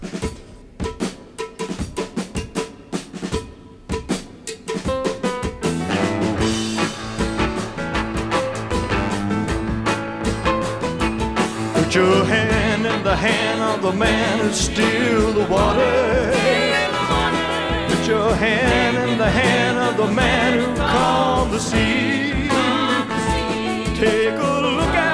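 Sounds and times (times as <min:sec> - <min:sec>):
crisp rhythmic percussion hits: 0:00.0 - 0:25.1
full band playing: 0:04.0 - 0:25.1
recorded gospel song by male singer: 0:11.7 - 0:25.1
speech: 0:12.0 - 0:16.6, 0:18.1 - 0:23.4.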